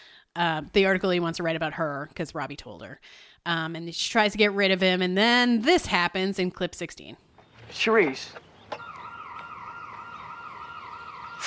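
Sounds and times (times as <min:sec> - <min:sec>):
speech: 0:00.4 - 0:08.4
electronic alarm wailing with sweeping pitch: 0:08.7 - 0:11.4.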